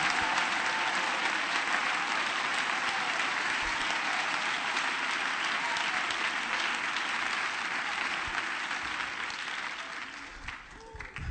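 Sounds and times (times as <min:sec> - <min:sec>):
audience applauding: 0:00.0 - 0:11.2.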